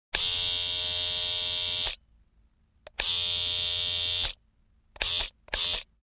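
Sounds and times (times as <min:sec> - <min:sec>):
trimmer switching on and off: 0:00.1 - 0:02.0, 0:02.9 - 0:04.4, 0:05.0 - 0:05.9.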